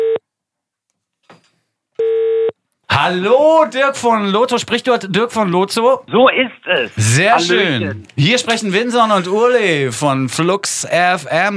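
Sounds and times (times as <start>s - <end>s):
outgoing telephone call ringing tone: 0.0s - 0.2s, 2.0s - 2.6s
speech: 3.0s - 11.5s.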